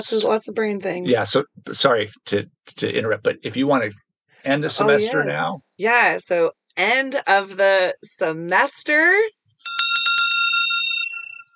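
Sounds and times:
speech: 0.0 - 9.4
small hand bell rung to end a class: 9.6 - 11.5.

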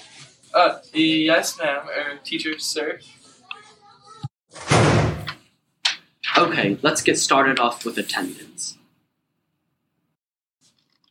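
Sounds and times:
speech: 0.6 - 3.2, 6.5 - 8.8
door pushed shut with a loud full-bodied thud and brief rattle: 4.6 - 5.4.

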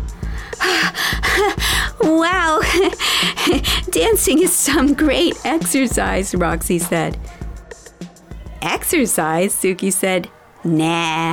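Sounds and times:
person panting heavily out of breath: 0.1 - 4.9
speech: 0.3 - 7.4, 8.6 - 11.3.

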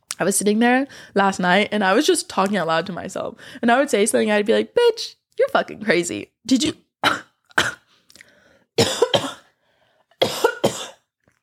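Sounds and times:
speech: 0.2 - 7.2
person coughing after inhaling a speck of dust: 7.0 - 7.9, 8.8 - 9.5, 10.2 - 11.1.

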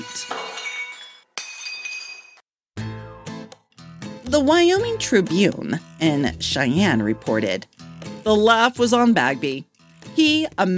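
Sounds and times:
bright clinking porcelain shards scattering and settling: 0.0 - 2.4
porcelain coffee mugs hurled from a tray shattering: 0.0 - 2.5
speech: 4.3 - 10.7.

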